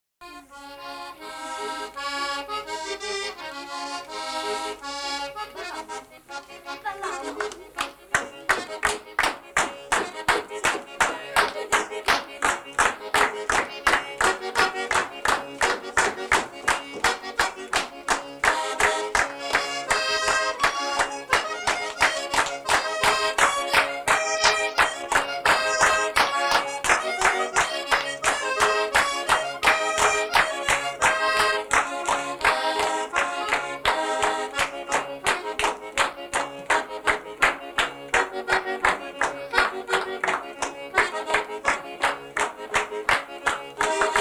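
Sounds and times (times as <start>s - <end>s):
accordion playing a tarantella in Lettino, Caserta: 0.2s - 44.2s
clapping to a tarantella in Lettino, Caserta: 1.9s - 44.2s.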